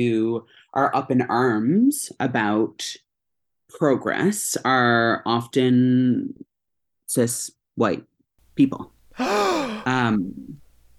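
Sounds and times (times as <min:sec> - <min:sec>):
speech: 0:00.0 - 0:03.0, 0:03.7 - 0:06.5, 0:07.1 - 0:10.6
person giving a loud dramatic gasp: 0:09.1 - 0:10.1.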